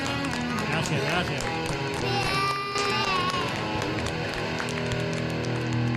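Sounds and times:
recorded applause effect of crowd clapping and cheering: 0.0s - 5.9s
speech: 0.9s - 3.0s
whoops from a crowd: 2.0s - 4.0s.

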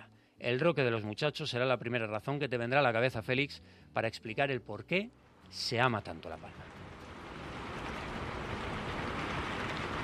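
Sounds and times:
speech: 0.4s - 6.8s
steady rain pouring: 5.3s - 10.0s.

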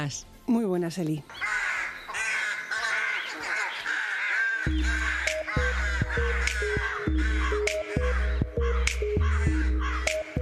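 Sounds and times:
steady melodic music bed: 0.0s - 1.4s, 4.7s - 10.4s
speech: 0.0s - 1.6s
flock of ravens cawing at the Tower of London: 1.3s - 10.4s.

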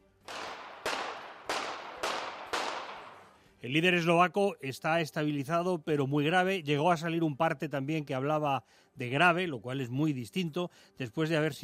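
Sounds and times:
gunshots: 0.2s - 3.4s
speech: 3.6s - 11.6s.

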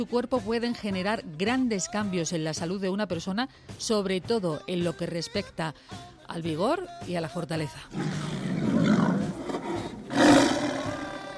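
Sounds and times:
speech: 0.0s - 8.4s
tiger roaring: 7.9s - 11.3s.

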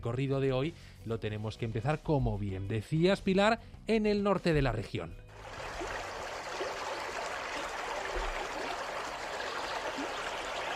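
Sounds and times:
speech: 0.0s - 5.6s
river water flowing with trickling and gurgling: 5.3s - 10.7s.

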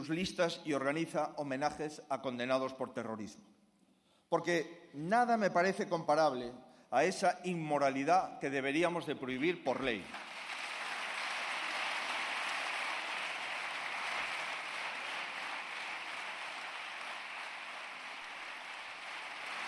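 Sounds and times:
speech: 0.0s - 3.6s, 4.3s - 10.3s
large crowd applauding a politician's speech: 10.0s - 19.6s.

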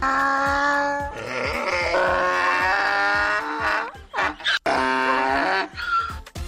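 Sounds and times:
man imitating a donkey's bray in a voice note: 0.0s - 6.2s.

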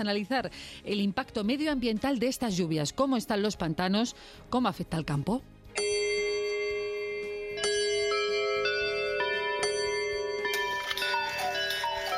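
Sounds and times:
speech: 0.0s - 6.0s
ringing bell-like chimes of antique clocks at El Escorial monastery: 5.8s - 12.1s.

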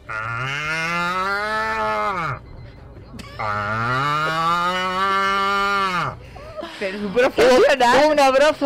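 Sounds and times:
man imitating cattle mooing in a voice note: 0.0s - 2.4s, 3.4s - 6.2s
speech: 6.8s - 8.6s.

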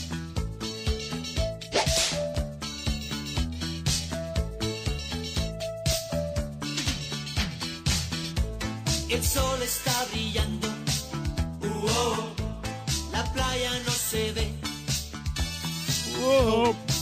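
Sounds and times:
upbeat song with rhythmic instrumental backing: 0.0s - 16.9s
sharp whip cracks: 1.7s - 2.4s
speech: 9.1s - 10.7s, 16.3s - 16.8s.

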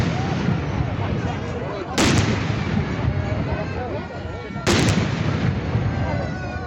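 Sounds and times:
crowd noise: 0.0s - 6.6s
murmuring voices: 0.0s - 6.6s
ceremonial cannon salute blasts: 2.0s - 3.0s, 4.6s - 5.7s.

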